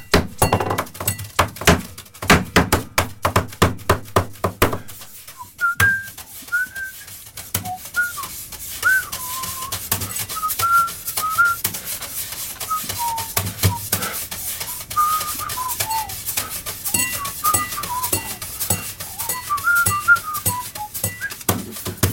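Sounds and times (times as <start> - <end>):
fast rhythmic drumming on a studio table and a glass: 0.0 - 22.1
high whistled melody of short sliding notes: 5.4 - 11.6, 12.7 - 13.7, 14.7 - 16.2, 16.8 - 21.4.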